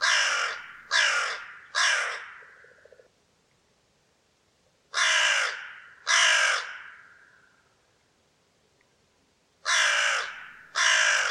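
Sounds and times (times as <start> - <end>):
hooded crow cawing, gruff and guttural: 0.0 - 3.0, 4.9 - 7.6, 9.6 - 11.2.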